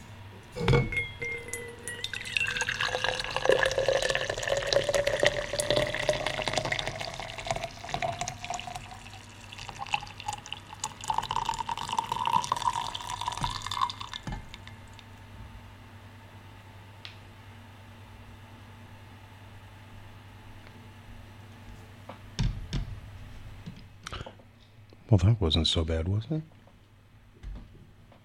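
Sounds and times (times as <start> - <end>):
clink: 0.7 - 2.6
coffee from a plunger coffee maker poured into a cup: 1.3 - 15.1
speech: 25.2 - 26.6.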